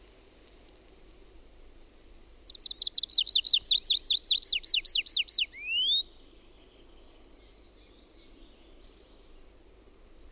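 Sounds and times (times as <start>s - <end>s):
tree pipit song: 2.1s - 9.5s.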